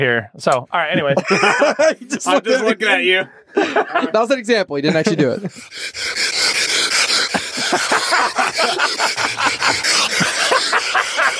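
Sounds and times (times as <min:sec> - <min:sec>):
speech: 0:00.0 - 0:06.2, 0:08.5 - 0:11.3
laughter: 0:00.8 - 0:05.7, 0:06.9 - 0:11.3
man breathing heavily: 0:05.1 - 0:11.3.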